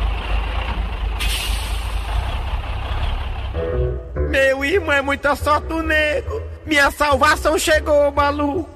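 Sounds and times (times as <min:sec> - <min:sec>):
heavy box truck engine droning at a gas station: 0:00.0 - 0:08.7
box truck air brakes hissing: 0:01.2 - 0:02.3
speech: 0:04.7 - 0:08.7.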